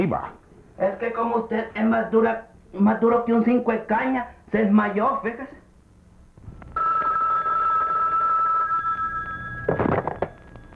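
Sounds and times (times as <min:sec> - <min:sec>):
speech: 0:00.0 - 0:05.6
telephone ringing with electronic tone: 0:06.8 - 0:10.7.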